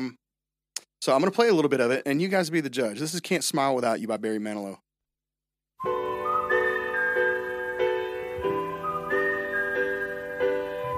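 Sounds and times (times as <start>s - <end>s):
speech: 0.0s - 0.2s, 1.0s - 4.8s, 5.8s - 6.1s
bright whistled melody in a song intro: 5.8s - 10.9s
soft sustained instrumental backing: 5.8s - 10.9s.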